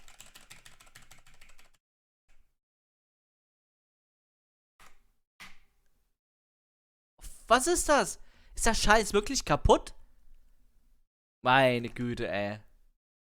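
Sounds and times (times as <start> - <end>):
rapid clicking of computer keyboard keys: 0.0 - 1.8
speech: 7.5 - 10.0, 11.4 - 12.7.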